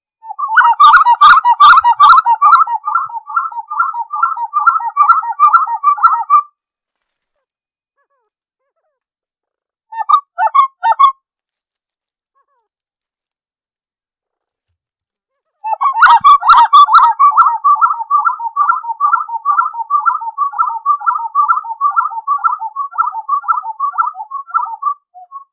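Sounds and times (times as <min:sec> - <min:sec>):
person singing: 0:00.2 - 0:06.5, 0:15.6 - 0:25.5.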